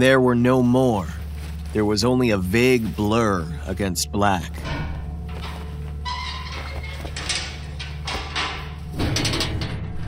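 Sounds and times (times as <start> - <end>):
speech: 0.0 - 4.7
steady low rumble: 1.1 - 10.0
well-oiled hatch creaking open: 4.6 - 10.0.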